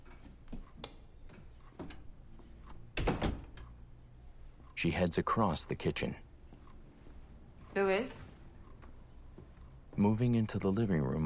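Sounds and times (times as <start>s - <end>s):
light clicks and knocks from handling the door latch: 2.9s - 3.7s
door swinging shut with a firm thud: 3.0s - 3.6s
speech: 4.8s - 6.3s, 10.0s - 11.2s.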